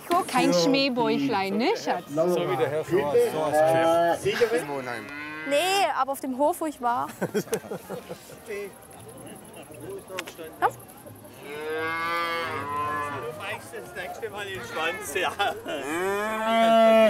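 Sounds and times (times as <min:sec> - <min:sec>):
speech: 0:00.3 - 0:08.9, 0:09.8 - 0:12.8, 0:13.5 - 0:17.0
calf being led by hand mooing: 0:03.6 - 0:05.8, 0:11.4 - 0:13.4, 0:15.8 - 0:17.0
laughter: 0:07.0 - 0:08.8, 0:13.2 - 0:17.0.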